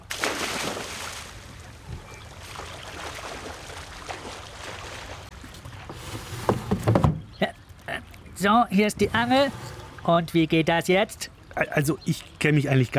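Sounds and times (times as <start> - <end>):
person jumping and splashing into water: 0.0 - 1.5, 2.4 - 5.3
speech: 8.4 - 12.9.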